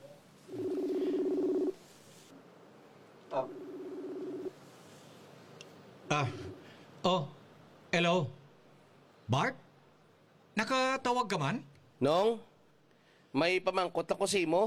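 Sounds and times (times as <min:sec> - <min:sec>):
faint hiss: 0:00.0 - 0:14.6
telephone tones as a number is dialed: 0:00.5 - 0:01.8, 0:03.6 - 0:04.5
speech: 0:06.2 - 0:06.4, 0:07.0 - 0:07.3, 0:11.3 - 0:12.5, 0:13.3 - 0:14.6.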